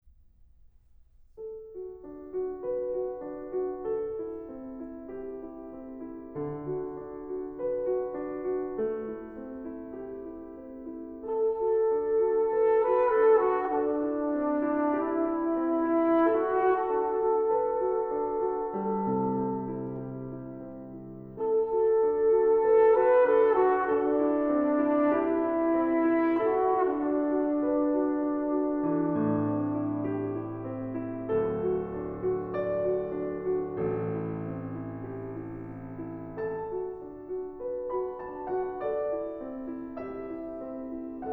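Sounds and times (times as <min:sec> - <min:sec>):
piano: 0:00.0 - 0:41.3
trumpet: 0:11.2 - 0:35.6.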